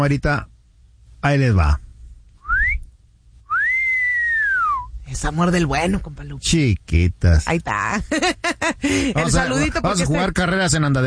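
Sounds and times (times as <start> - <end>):
speech: 0.0 - 0.5, 1.2 - 1.8, 5.1 - 11.0
human wolf whistle: 2.4 - 2.9, 3.5 - 4.9.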